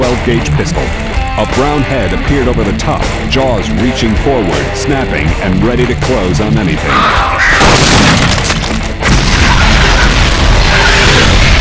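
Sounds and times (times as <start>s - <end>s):
speech: 0.1s - 8.8s
phosphorus grenade explosion: 7.4s - 11.5s.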